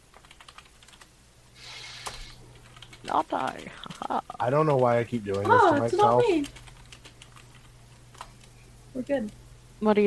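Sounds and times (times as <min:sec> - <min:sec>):
typing a message on a computer keyboard: 0:00.1 - 0:01.1, 0:02.6 - 0:08.5
speech: 0:03.0 - 0:06.6, 0:09.0 - 0:10.0.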